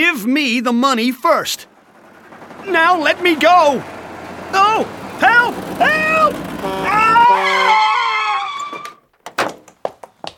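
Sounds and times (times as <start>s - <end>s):
speech: 0.0s - 1.7s, 2.6s - 8.0s
truck tires skidding: 1.3s - 9.0s
truck horn blaring: 5.3s - 8.2s
sharp knocks and thuds: 9.1s - 10.3s.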